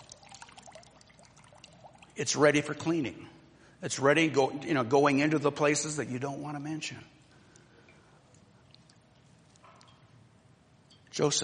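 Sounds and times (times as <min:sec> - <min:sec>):
soft continuous trickle of water: 0:00.0 - 0:02.8, 0:07.3 - 0:11.2
speech: 0:02.2 - 0:07.2, 0:11.2 - 0:11.4.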